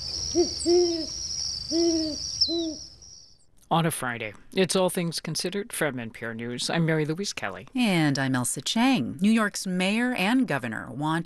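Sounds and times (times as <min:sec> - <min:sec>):
great horned owl hooting: 0:00.0 - 0:03.1
steady high insect drone: 0:00.0 - 0:03.4
speech: 0:00.3 - 0:02.8, 0:03.7 - 0:11.2.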